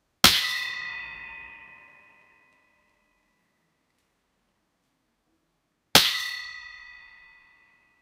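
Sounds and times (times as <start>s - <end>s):
metallic clang of a basket: 0.2s - 3.4s, 6.0s - 7.9s.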